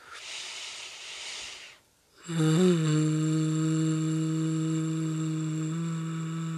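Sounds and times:
breathy inhale through the nose: 0:00.0 - 0:01.9
low throat hum imitating buzzing bees as a breathing exercise: 0:02.2 - 0:06.5.

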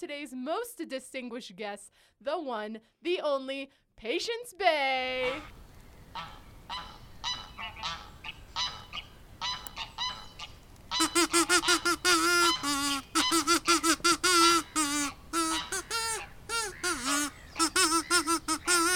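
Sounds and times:
speech: 0:00.0 - 0:05.6, 0:06.2 - 0:06.9, 0:11.0 - 0:14.5
kazoo fanfare: 0:11.0 - 0:18.9.

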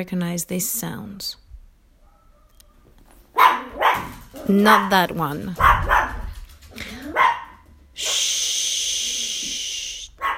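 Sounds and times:
speech: 0:00.0 - 0:01.4, 0:04.5 - 0:05.9
dog barking: 0:02.0 - 0:05.0, 0:05.6 - 0:06.4, 0:07.0 - 0:08.2, 0:10.2 - 0:10.3
steady loud hiss: 0:08.0 - 0:10.2.

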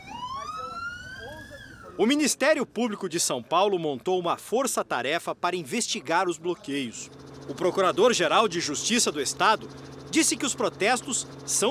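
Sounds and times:
ambulance siren wailing: 0:00.0 - 0:02.2
rumble of street traffic: 0:00.0 - 0:11.6
speech: 0:02.0 - 0:11.6.

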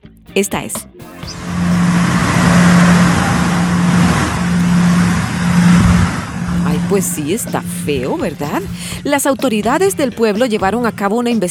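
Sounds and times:
speech: 0:00.4 - 0:01.4, 0:06.9 - 0:11.4
broad noisy wash: 0:01.2 - 0:10.0
amplified low-frequency droning hum: 0:01.2 - 0:11.4.

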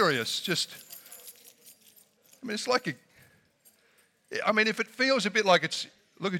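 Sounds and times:
speech: 0:00.0 - 0:00.9, 0:02.4 - 0:03.0, 0:04.3 - 0:06.3
many sets of keys jangling held up by an audience: 0:00.0 - 0:04.3.

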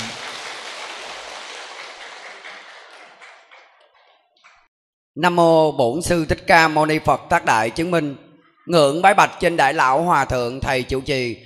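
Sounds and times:
crowd applauding: 0:00.0 - 0:04.6
speech: 0:05.2 - 0:11.4.

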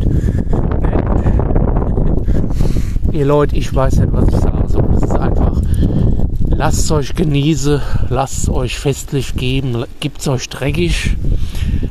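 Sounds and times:
wind buffeting a microphone outdoors: 0:00.0 - 0:11.8
speech: 0:03.2 - 0:05.4, 0:06.6 - 0:11.8.

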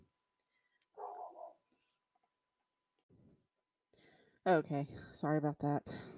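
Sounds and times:
dog barking in the background: 0:01.0 - 0:01.6
speech: 0:04.4 - 0:06.1.

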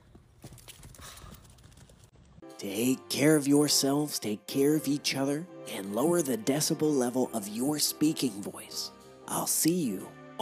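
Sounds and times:
horse hooves clip-clopping: 0:00.0 - 0:02.4
speech: 0:02.6 - 0:10.3.

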